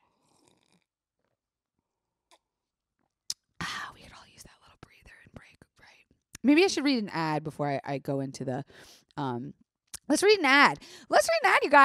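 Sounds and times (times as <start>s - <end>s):
person slurping coffee: 0.1s - 1.3s
swallowing and mouth sounds: 0.1s - 1.4s
speech: 6.4s - 11.8s.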